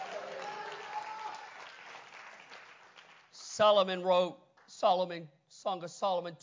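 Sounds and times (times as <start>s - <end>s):
audience clapping hands: 0.0s - 3.6s
speech: 3.6s - 6.4s.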